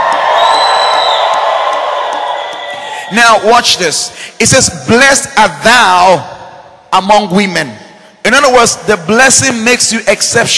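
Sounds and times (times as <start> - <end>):
large crowd screaming and cheering: 0.0 - 3.9
speech: 3.1 - 6.3, 6.9 - 10.5.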